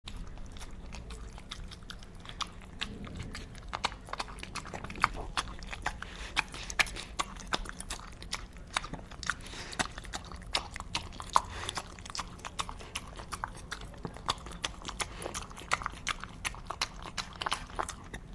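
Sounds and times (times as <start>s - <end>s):
chomping: 0.1s - 18.3s.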